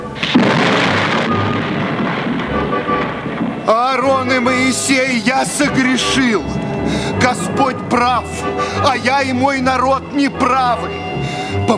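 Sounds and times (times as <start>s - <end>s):
low thunder rumbling: 0.0s - 8.8s
hail and heavy rain pounding in a violent thunderstorm over Egypt: 0.2s - 5.5s
speech: 3.7s - 11.7s.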